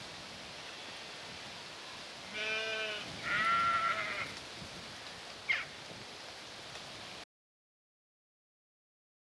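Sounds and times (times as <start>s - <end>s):
sheep bleating: 2.3s - 4.4s.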